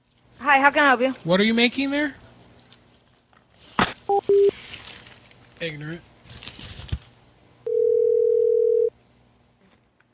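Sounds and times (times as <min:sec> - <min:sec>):
speech: 0:00.5 - 0:02.2, 0:05.6 - 0:06.1
loud telephone dial tone after call hang-up: 0:04.1 - 0:04.5, 0:07.7 - 0:08.9.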